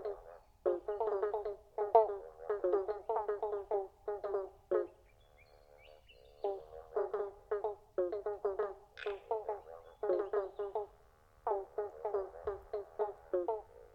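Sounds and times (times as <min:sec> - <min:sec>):
pobblebonk frogs calling in chorus: 0:00.0 - 0:13.9.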